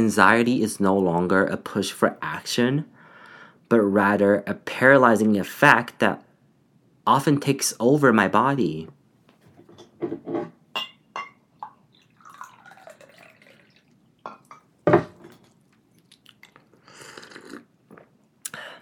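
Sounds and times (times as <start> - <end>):
speech: 0.0 - 2.9, 3.7 - 6.2, 7.1 - 9.0
sharp ceramic clinks: 10.8 - 13.0
scattered drips and splashes of tea: 11.9 - 14.6
tea pouring into a cup: 11.9 - 14.6.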